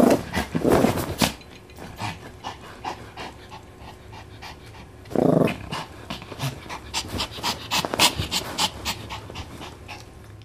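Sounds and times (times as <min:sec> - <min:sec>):
dog fighting with blankets rustling: 0:00.0 - 0:01.4, 0:07.0 - 0:09.6
male dog panting: 0:01.2 - 0:10.3.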